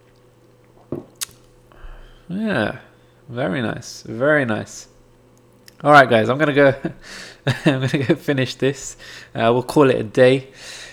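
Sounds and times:
sipping a drink: 0:00.0 - 0:02.2
sharp smacking click: 0:01.1 - 0:01.5
speech: 0:02.3 - 0:04.9, 0:05.8 - 0:10.9
laughter: 0:06.6 - 0:08.3.

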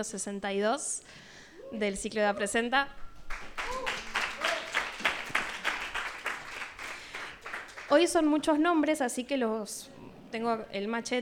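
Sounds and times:
speech: 0:00.0 - 0:03.5, 0:07.9 - 0:11.1
audience applauding at a film screening: 0:03.2 - 0:08.2.

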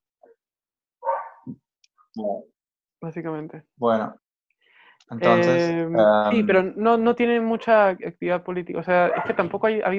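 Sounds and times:
faint yip: 0:01.0 - 0:01.4
neighborhood dogs barking and answering each other: 0:01.0 - 0:01.4, 0:09.1 - 0:09.4
speech: 0:02.2 - 0:04.2, 0:05.1 - 0:09.9.

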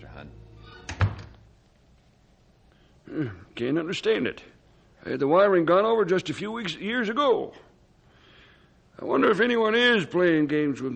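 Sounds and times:
speech: 0:00.2 - 0:00.5, 0:03.1 - 0:07.7, 0:09.0 - 0:10.9
house door closing with a solid low thud: 0:00.9 - 0:01.4.

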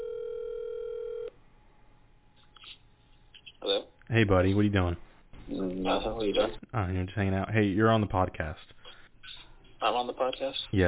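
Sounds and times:
telephone ringback tone over a phone line: 0:00.0 - 0:01.3
speech: 0:03.6 - 0:08.8, 0:09.8 - 0:10.8.

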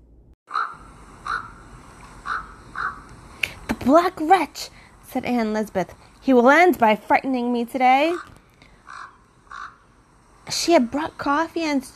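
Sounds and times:
raven giving harsh screaming caws: 0:00.5 - 0:03.2, 0:08.1 - 0:10.1
speech: 0:03.8 - 0:08.3, 0:10.5 - 0:11.9.

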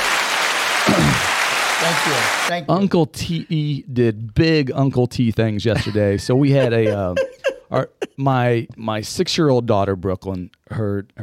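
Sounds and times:
canned applause sound effect: 0:00.0 - 0:02.5
speech: 0:01.8 - 0:11.2
laughter: 0:05.7 - 0:08.2.

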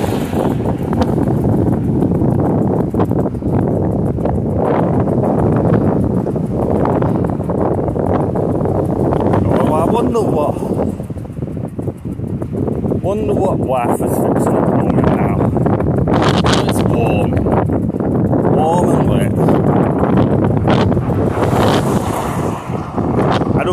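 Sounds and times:
wind rushing past the ears of someone walking outdoors: 0:00.0 - 0:23.7
speech: 0:13.1 - 0:14.6.

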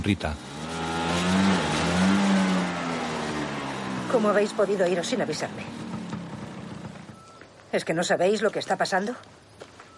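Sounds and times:
speech: 0:00.0 - 0:00.5, 0:04.1 - 0:05.8, 0:07.7 - 0:09.4
motorbike engine droning at night: 0:00.0 - 0:07.6.

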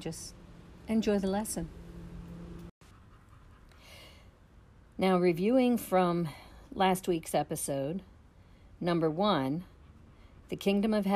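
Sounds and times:
speech: 0:00.0 - 0:01.8, 0:05.0 - 0:08.1, 0:08.8 - 0:09.7, 0:10.5 - 0:11.1
dog panting while lying in the sun on a warm fall day: 0:02.8 - 0:04.2.

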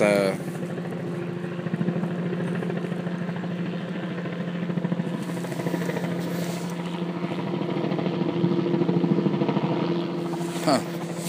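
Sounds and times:
helicopter passing overhead with rotor throb and engine drone: 0:00.0 - 0:11.2
faint voice: 0:10.6 - 0:11.0.

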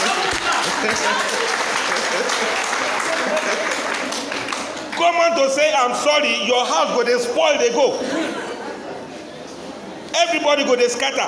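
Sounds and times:
laughter: 0:00.0 - 0:04.8, 0:07.8 - 0:09.6
crowd clapping: 0:00.0 - 0:05.2
murmur of voices: 0:00.0 - 0:11.2
speech: 0:00.8 - 0:01.6, 0:05.0 - 0:08.4, 0:10.2 - 0:11.2.

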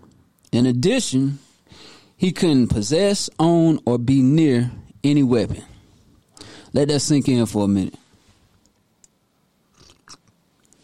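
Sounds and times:
speech: 0:00.6 - 0:01.4, 0:02.2 - 0:05.7, 0:06.7 - 0:08.0
slurping sips of coffee: 0:09.7 - 0:10.3.

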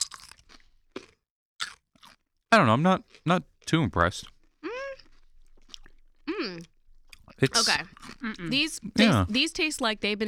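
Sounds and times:
person biting into a pickle held to the microphone: 0:00.0 - 0:02.3, 0:03.0 - 0:08.4
speech: 0:02.5 - 0:04.4, 0:07.4 - 0:10.2.

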